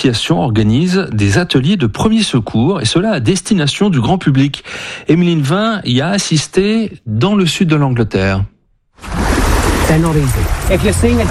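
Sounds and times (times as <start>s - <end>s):
speech: 0.0s - 9.3s, 9.9s - 11.3s
sea water sloshing around people waist-deep in the sea in southern England: 9.0s - 11.3s.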